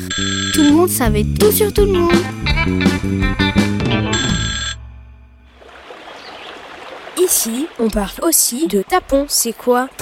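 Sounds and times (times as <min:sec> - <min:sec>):
speech: 0:00.0 - 0:04.3, 0:07.3 - 0:09.9
old telephone at a grocery shop ringing: 0:04.2 - 0:04.8.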